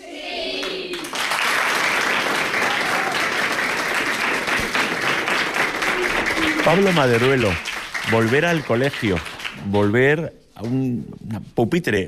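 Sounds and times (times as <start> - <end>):
class of children applauding: 0.6 - 9.7
speech: 6.7 - 12.0.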